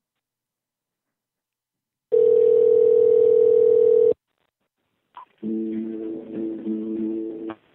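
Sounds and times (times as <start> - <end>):
telephone ringback tone through the line: 2.1 - 4.2.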